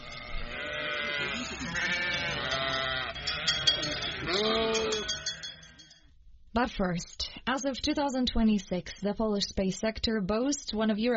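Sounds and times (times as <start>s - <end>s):
flock of hungry sheep bleating in a Polish city: 0.0s - 5.8s
faint metallic bell clinks: 3.2s - 6.1s
speech: 6.6s - 11.1s.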